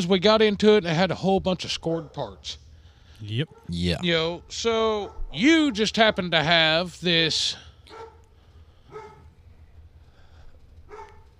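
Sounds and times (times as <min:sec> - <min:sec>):
speech: 0:00.0 - 0:02.6, 0:03.2 - 0:08.0
dog barking: 0:04.4 - 0:06.5, 0:07.9 - 0:08.2, 0:08.9 - 0:09.3, 0:10.9 - 0:11.3.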